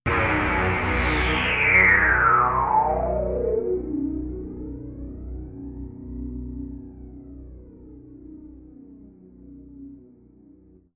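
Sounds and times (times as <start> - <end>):
sweeping drone: 0.1 - 9.6.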